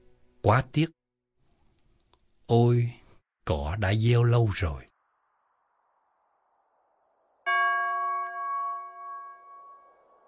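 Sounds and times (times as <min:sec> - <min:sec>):
speech: 0:00.4 - 0:01.0, 0:02.5 - 0:04.9
meditation bell ringing: 0:07.5 - 0:10.2.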